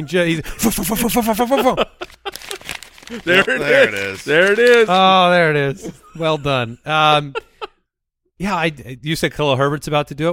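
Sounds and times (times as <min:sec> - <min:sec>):
speech: 0:00.0 - 0:01.9, 0:03.1 - 0:07.5, 0:08.4 - 0:10.3
laughter: 0:00.0 - 0:07.8
papers being shuffled and handled: 0:02.0 - 0:05.3.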